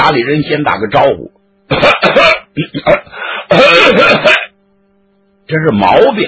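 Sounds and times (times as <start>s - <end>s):
speech: 0.1s - 4.4s, 5.5s - 6.2s
person imitating loud rough throat-clearing and coughing: 1.7s - 4.6s.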